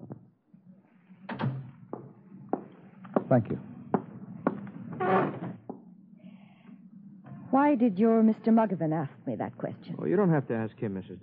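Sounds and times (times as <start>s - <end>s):
door shutting: 1.3s - 1.7s, 4.9s - 5.6s
speech: 3.3s - 3.7s, 7.6s - 11.2s.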